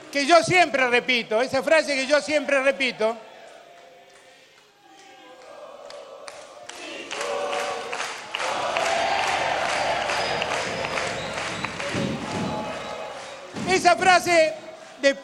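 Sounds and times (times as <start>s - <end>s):
speech: 0.1s - 3.3s, 14.2s - 15.2s
crowd of supporters clapping: 4.1s - 15.2s.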